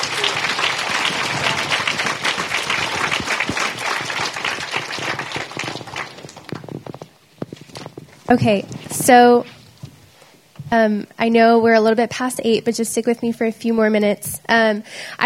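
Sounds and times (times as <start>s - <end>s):
audience applauding panelists: 0.0s - 7.2s
speech: 8.3s - 9.6s, 10.7s - 15.2s.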